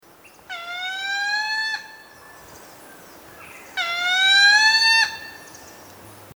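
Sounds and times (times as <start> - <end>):
grey-breasted mountain toucan Andigena hypoglauca calling: 0.0 - 6.3.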